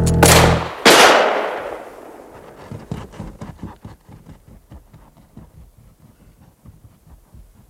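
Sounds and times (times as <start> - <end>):
loud gunshots with echo: 0.2 - 2.3
faint rhythmic thuds: 2.8 - 7.6.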